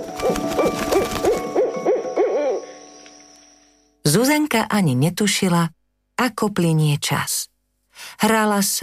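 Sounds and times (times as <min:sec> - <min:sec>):
owl hooting: 0:00.0 - 0:03.8
speech: 0:04.5 - 0:08.8.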